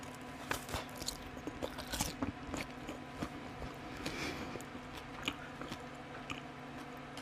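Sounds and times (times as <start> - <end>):
crisp biting and chewing of freshly grilled food with soy sauce: 0.0 - 7.0.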